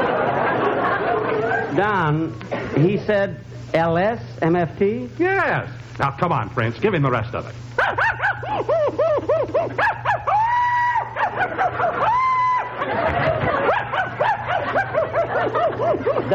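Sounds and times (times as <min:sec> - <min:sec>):
laughter: 0:00.0 - 0:03.6, 0:07.8 - 0:16.3
steady low hum: 0:00.0 - 0:16.3
speech: 0:01.8 - 0:10.0, 0:14.5 - 0:16.3
dog barking in quick yipping bursts: 0:07.8 - 0:08.6, 0:09.8 - 0:10.4, 0:11.2 - 0:12.1, 0:13.5 - 0:16.3
dog drawn-out whining howls: 0:07.8 - 0:12.8, 0:13.5 - 0:15.0.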